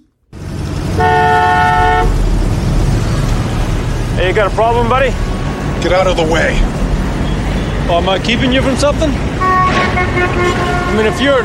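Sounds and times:
steady rumble of traffic and engine noise: 0.0s - 11.4s
car horn blast: 1.0s - 2.2s, 9.4s - 11.4s
speech: 4.3s - 6.8s, 7.9s - 9.3s, 10.2s - 11.4s.

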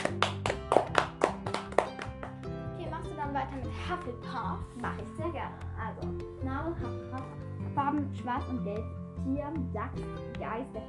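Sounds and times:
short burst of applause: 0.0s - 2.5s
speech: 3.6s - 10.8s.

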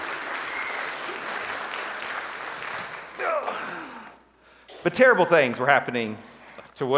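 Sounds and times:
audience clapping: 0.0s - 4.2s
person whooping: 3.2s - 4.2s
speech: 4.8s - 6.9s.

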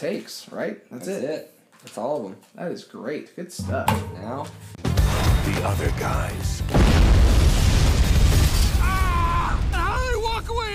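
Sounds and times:
speech: 0.0s - 4.8s, 5.4s - 7.6s
loud rumbling explosion sound effect: 4.8s - 5.8s, 6.7s - 9.8s
person crying out: 8.8s - 9.7s.

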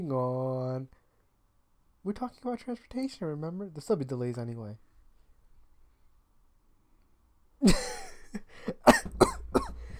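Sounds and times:
speech: 0.0s - 1.0s, 2.0s - 4.9s
harsh rough coughing: 8.7s - 9.9s.

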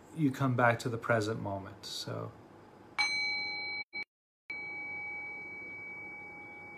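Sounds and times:
speech: 0.2s - 2.4s
struck meditation bell ringing: 3.0s - 6.7s.

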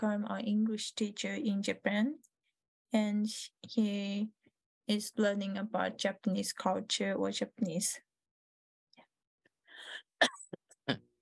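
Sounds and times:
speech: 0.0s - 2.3s, 2.9s - 8.1s, 9.8s - 11.0s
person coughing with raspy throat-clearing: 10.2s - 11.0s.

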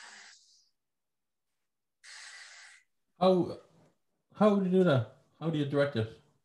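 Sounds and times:
airy breaths demonstrating a breathing exercise: 0.0s - 0.8s, 2.0s - 3.0s
slow deliberate exhale directed out to the ribs: 0.0s - 0.8s, 2.0s - 2.9s
speech: 3.2s - 3.6s, 4.4s - 6.2s.

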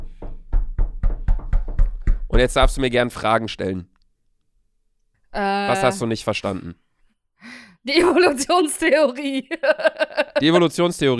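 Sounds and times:
knocking on tables as applause: 0.0s - 2.9s
speech: 2.4s - 3.9s, 5.3s - 6.8s, 7.4s - 11.1s
laughter: 9.4s - 11.0s.

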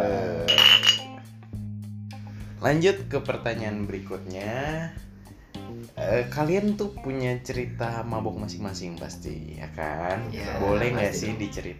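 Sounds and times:
glasses clinking in a toast: 0.5s - 1.2s
speech: 2.6s - 5.1s, 6.0s - 11.7s.

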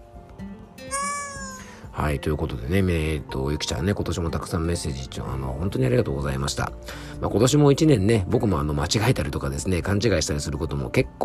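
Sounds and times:
cat meowing: 0.9s - 1.8s
speech: 2.0s - 11.2s.

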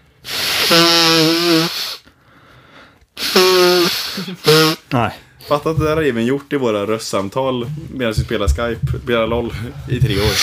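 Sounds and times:
nose blowing with a honking whistling tone: 0.0s - 4.9s, 10.1s - 10.4s
speech: 4.2s - 10.4s.

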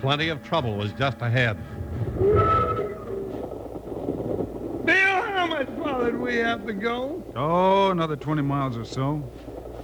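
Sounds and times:
speech: 0.0s - 2.6s, 6.0s - 9.5s
brief tonal whine of passenger train: 0.0s - 7.4s
passenger train rolling along the rails: 0.0s - 9.8s.

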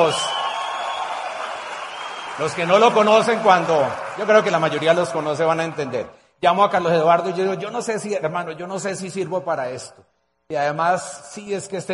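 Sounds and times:
speech: 0.0s - 0.3s, 2.4s - 11.9s
sizable audience clapping: 0.0s - 6.2s.

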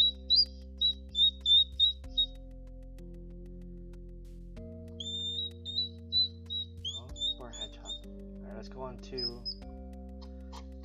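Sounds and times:
hedgehog making high bird-like cries: 0.0s - 2.3s, 5.0s - 8.1s, 9.2s - 10.8s
low steady hum: 0.0s - 10.8s
speech: 8.9s - 9.5s.

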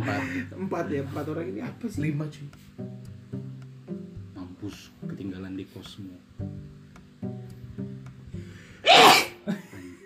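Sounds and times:
speech: 0.0s - 3.0s, 4.6s - 6.7s
quiet breath: 8.4s - 8.8s
person sneezing: 8.8s - 9.4s
person laughing: 9.0s - 10.0s.

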